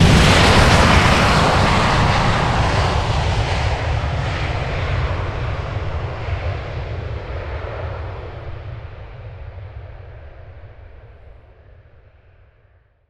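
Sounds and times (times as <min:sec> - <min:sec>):
space fighter taking off: 0:00.0 - 0:10.0.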